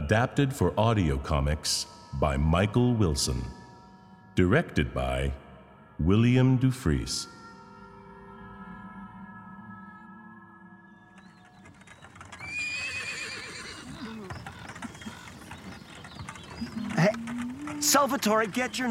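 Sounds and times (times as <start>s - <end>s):
speech: 0.1s - 3.6s, 4.4s - 5.4s, 6.0s - 7.4s, 17.9s - 18.8s
horse hooves clip-clopping while pulling a wagon: 11.1s - 18.8s
horses pulling a wagon neighing: 12.0s - 18.8s.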